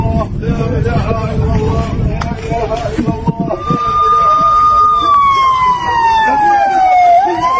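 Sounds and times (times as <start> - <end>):
loud busy backdrop of noise: 0.0 - 7.5
men's voices talking: 0.0 - 7.5
air raid siren wailing in Palestine: 3.3 - 7.5.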